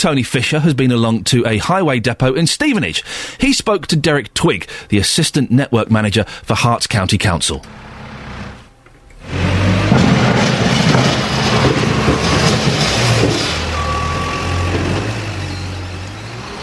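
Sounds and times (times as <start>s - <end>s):
speech: 0.0s - 7.8s
gritting lorry diesel engine rumbling loudly while reversing at a highway depot: 7.6s - 16.6s
gritting lorry electronic reversing warning beeps: 11.8s - 16.6s.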